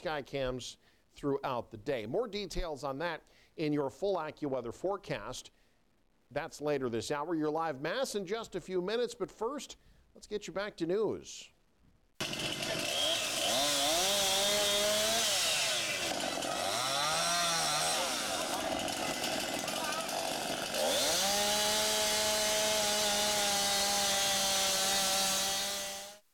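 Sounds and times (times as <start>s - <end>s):
speech: 0.0s - 5.6s, 6.3s - 11.5s
chainsaws revving while cutting fallen trees: 12.2s - 26.2s.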